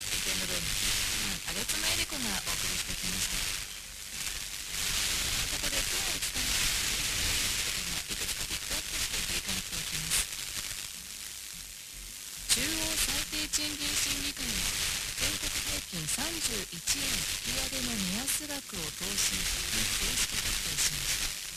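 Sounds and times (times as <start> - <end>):
fm radio broadcast: 0.0 - 21.5.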